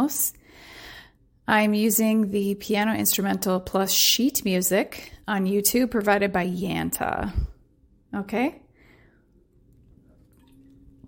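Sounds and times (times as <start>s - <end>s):
speech: 0.0s - 0.4s, 1.5s - 7.5s, 8.1s - 8.6s
low hum: 0.0s - 11.0s
sipping water with soft wet slurping: 8.9s - 11.0s.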